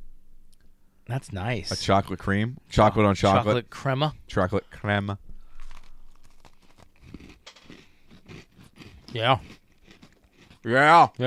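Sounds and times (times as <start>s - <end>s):
speech: 1.1s - 5.3s, 9.1s - 9.6s, 10.6s - 11.2s
crunching a bite of chocolate dirt cake with gummy candy: 5.4s - 11.2s.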